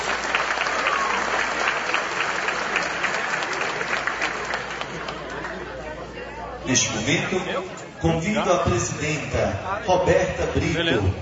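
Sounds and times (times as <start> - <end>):
large audience applause for honorees: 0.0 - 5.9
speech: 6.7 - 11.1.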